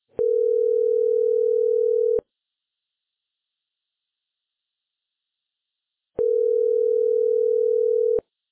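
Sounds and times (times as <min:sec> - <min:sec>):
US telephone early media tone: 0:00.2 - 0:02.2, 0:06.2 - 0:08.2.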